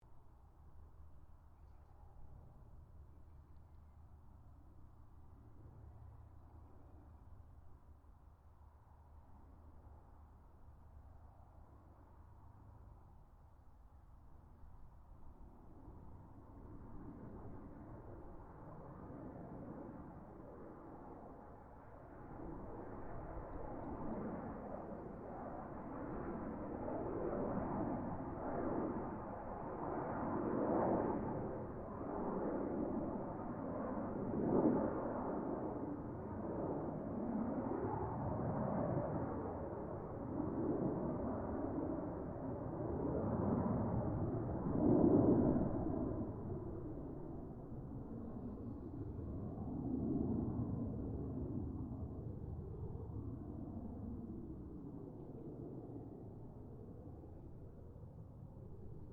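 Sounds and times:
distant Gloster Meteor F Mk8 fighter jet passing: 0:00.6 - 0:59.1.

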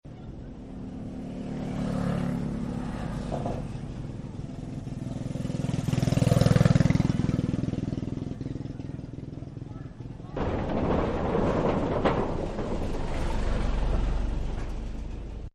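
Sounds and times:
car traffic on a wooden bridge: 0:00.0 - 0:15.5.

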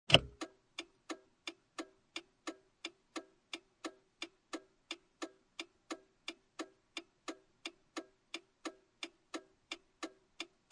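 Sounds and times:
turn signal ticking inside a 1996 Acura Integra with engine off: 0:00.1 - 0:10.7.

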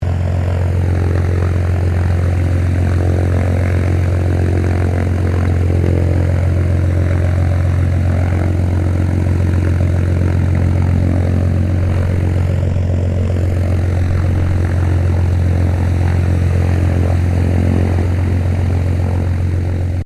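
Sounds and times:
Piper Cherokee 6-RG light civil aircraft taxiing close: 0:00.0 - 0:20.0.

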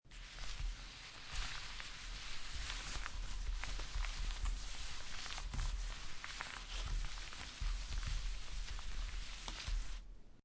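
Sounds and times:
playing cards shuffled by sliding them around on a table: 0:00.1 - 0:10.1.

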